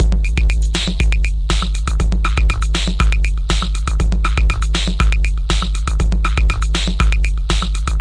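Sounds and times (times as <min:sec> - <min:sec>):
clicking distorting drum loops and breaks: 0:00.0 - 0:07.9.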